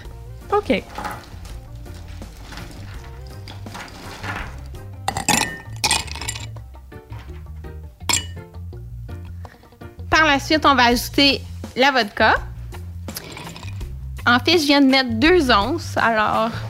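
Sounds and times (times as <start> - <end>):
quiet music: 0.0 - 16.6
speech: 0.5 - 1.0, 10.3 - 12.5, 14.3 - 16.6
ice cubes clinking into a glass: 5.1 - 6.6, 8.1 - 8.4, 13.2 - 13.8.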